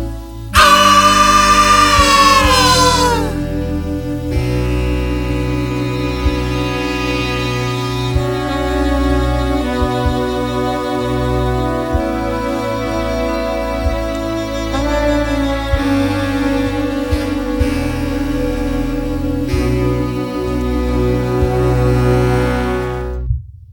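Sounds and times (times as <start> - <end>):
orchestra playing: 0.2 - 23.3
person screaming: 0.6 - 3.5.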